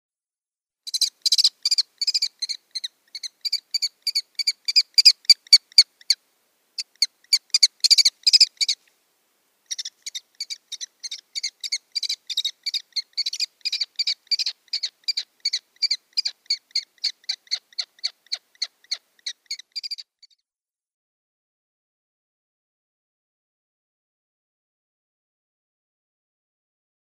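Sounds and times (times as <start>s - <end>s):
Eurasian Kestrel nestlings calling: 0.9s - 6.2s, 6.8s - 8.8s, 9.7s - 20.0s.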